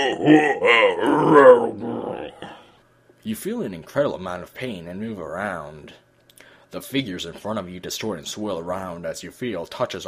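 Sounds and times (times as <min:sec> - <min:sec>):
speech: 0:00.0 - 0:01.8, 0:03.2 - 0:06.0, 0:06.7 - 0:10.0
voice imitating a creature's huge heaving breath: 0:00.0 - 0:02.8.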